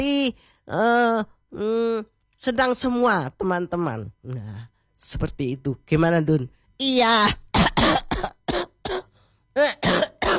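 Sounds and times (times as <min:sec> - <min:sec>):
speech: 0:00.0 - 0:08.0, 0:09.6 - 0:10.1
person coughing harshly: 0:07.5 - 0:10.3.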